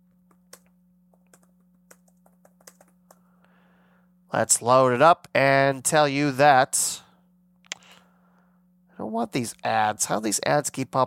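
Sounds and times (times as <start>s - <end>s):
steady low electrical hum: 0.0s - 11.0s
typing a search on a computer keyboard: 0.3s - 3.2s
speech: 4.3s - 7.0s, 9.2s - 11.0s.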